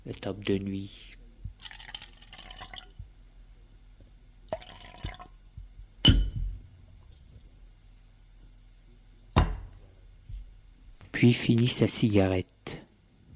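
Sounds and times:
speech: 0.0 - 1.2, 11.2 - 12.5
red wine poured from a bottle into a glass: 1.6 - 3.0, 4.5 - 5.4.

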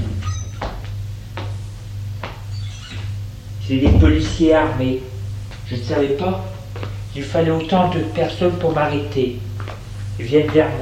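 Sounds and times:
steady low hum: 3.3 - 7.2
speech: 3.7 - 5.1, 5.7 - 9.5, 10.2 - 10.8
door opening with clunks and scraping: 3.8 - 4.6.

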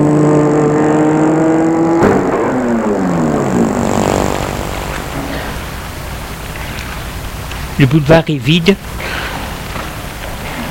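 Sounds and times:
car engine humming while a woman parks on an empty boulevard: 0.0 - 7.8
speech: 7.8 - 9.0.

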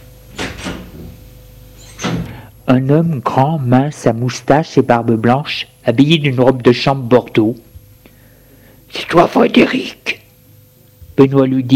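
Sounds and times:
low steady hum: 0.0 - 11.7
door opening: 1.8 - 2.4
speech: 2.7 - 7.6, 8.9 - 10.1, 11.2 - 11.7.

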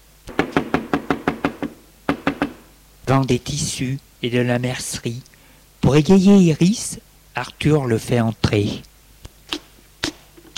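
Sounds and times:
knocking on a house door: 0.3 - 2.6
speech: 3.1 - 8.9.

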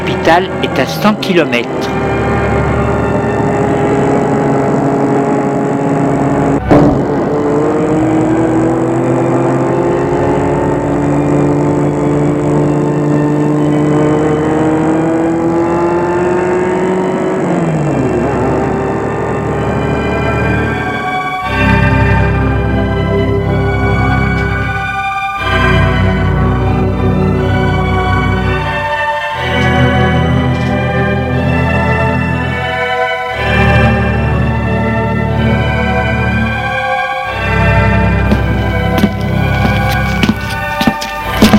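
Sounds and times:
car engine droning and revving: 0.0 - 41.5
speech: 0.1 - 2.0.

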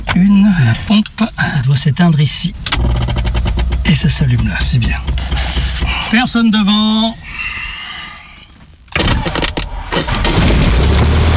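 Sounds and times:
speech: 0.2 - 3.2, 3.9 - 7.2
light aircraft engine starting and revving up: 2.7 - 4.2, 9.0 - 11.3.

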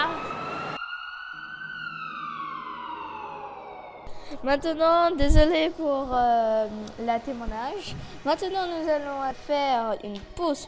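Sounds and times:
ambulance siren wailing: 0.0 - 4.3
speech: 4.3 - 10.6.

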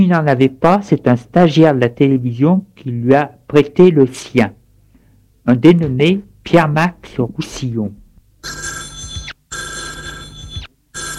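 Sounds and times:
speech: 0.0 - 4.6, 5.5 - 8.6
telephone bell ringing with a bright metallic trill: 8.4 - 11.1.

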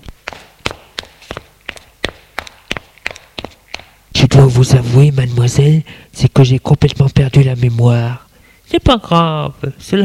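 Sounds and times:
footsteps of a man climbing stairs: 0.0 - 4.0
speech: 4.4 - 10.0.

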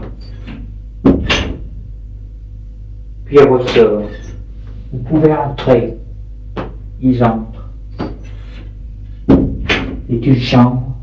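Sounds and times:
speech: 3.3 - 4.3, 4.9 - 6.0, 7.0 - 8.1, 10.1 - 10.9
knocking on a door: 9.3 - 10.0.

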